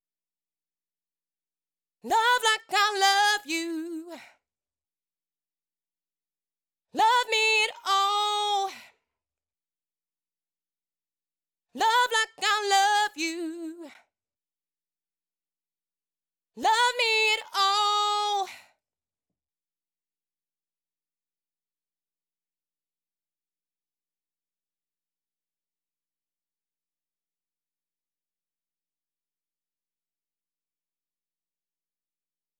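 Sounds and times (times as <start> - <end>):
female vocal chorus response melody: 2.0 - 4.3, 7.0 - 8.8, 11.8 - 14.0, 16.6 - 18.6.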